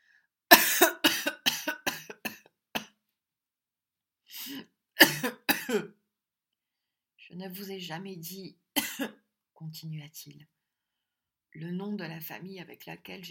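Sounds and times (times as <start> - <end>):
person coughing: 0.5 - 2.9, 4.4 - 5.9, 8.8 - 9.2
speech: 7.4 - 10.6, 11.6 - 13.2.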